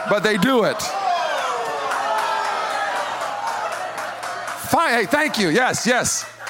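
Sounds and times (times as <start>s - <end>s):
speech: 0.0s - 1.0s, 4.7s - 6.3s
live audience cheering: 0.0s - 6.4s
scattered whoops from the crowd: 0.8s - 3.9s
laughter: 3.1s - 6.4s.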